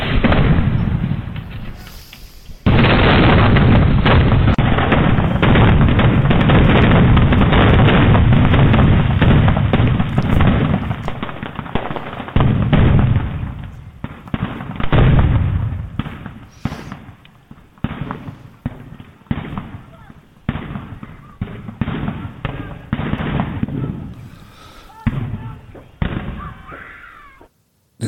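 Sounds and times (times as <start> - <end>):
fireworks exploding in a street: 0.0 - 28.0.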